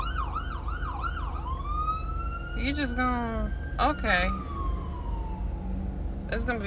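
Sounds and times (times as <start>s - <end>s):
ambulance siren wailing: 0.0s - 6.6s
steady traffic rumble: 0.0s - 6.6s
speech: 2.6s - 4.6s, 6.3s - 6.6s.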